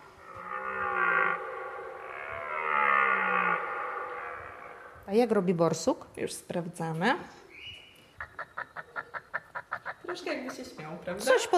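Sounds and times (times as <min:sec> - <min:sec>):
red deer bellowing in deep drawn-out roars: 0:00.0 - 0:05.1
speech: 0:05.1 - 0:07.4, 0:10.2 - 0:11.5.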